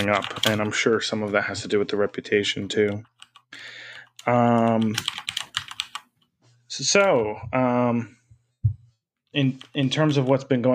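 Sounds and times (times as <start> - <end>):
clacky mechanical keyboard typing: 0.0 - 0.9, 2.7 - 6.1, 9.4 - 10.4
speech: 0.0 - 5.2, 6.7 - 8.2, 9.3 - 10.7.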